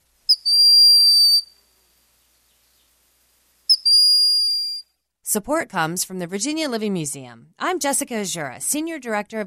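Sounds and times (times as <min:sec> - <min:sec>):
broad-winged hawk plaintive whistling call: 0:00.3 - 0:01.6, 0:03.7 - 0:04.9
speech: 0:05.3 - 0:09.4.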